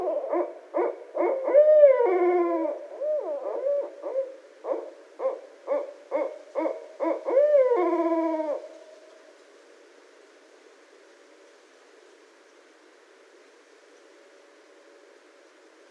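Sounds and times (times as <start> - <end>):
barred owl hooting: 0.0 - 8.8.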